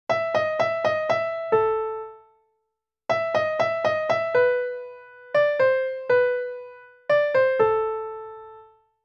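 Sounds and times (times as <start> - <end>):
piano practice: 0.1 - 2.4, 3.1 - 8.9.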